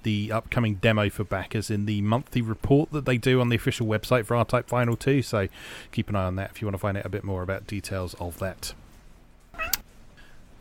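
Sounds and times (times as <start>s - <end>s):
speech: 0.0s - 8.8s
cat meowing: 9.6s - 9.8s.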